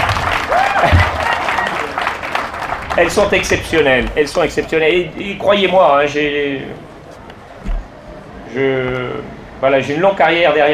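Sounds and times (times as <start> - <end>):
large audience applauding: 0.0 - 5.0
speech: 3.0 - 6.9, 8.5 - 10.7.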